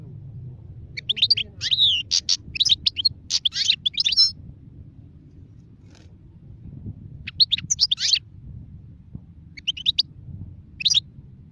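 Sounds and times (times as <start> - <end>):
low background rumble: 0.0 - 11.4
wild European goldfinch singing: 1.0 - 4.3, 7.3 - 8.2, 9.6 - 10.0, 10.8 - 11.0.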